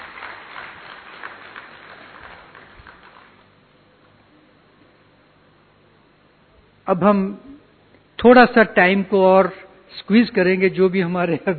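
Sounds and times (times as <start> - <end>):
audience applause: 0.0 - 3.5
speech: 6.9 - 7.5, 8.2 - 11.5.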